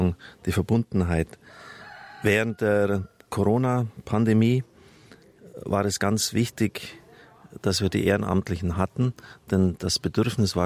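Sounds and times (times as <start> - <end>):
speech: 0.1 - 4.7, 5.6 - 10.6
rooster crowing faintly: 1.4 - 3.6.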